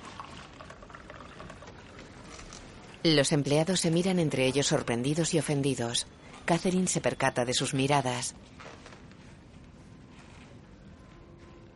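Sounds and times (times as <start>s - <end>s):
coffee pouring from a coffee maker into a cup in an office: 0.0s - 3.0s
speech: 3.0s - 8.7s.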